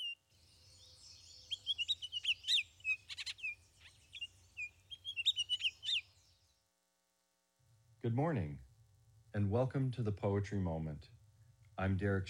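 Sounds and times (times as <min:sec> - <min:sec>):
small bird singing bright high chirps and trills: 0:00.0 - 0:06.6
speech: 0:08.0 - 0:08.7, 0:09.3 - 0:11.2, 0:11.8 - 0:12.2.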